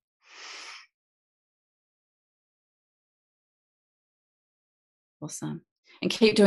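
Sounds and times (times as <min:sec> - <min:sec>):
deep breath: 0:00.3 - 0:00.8
speech: 0:05.2 - 0:06.4.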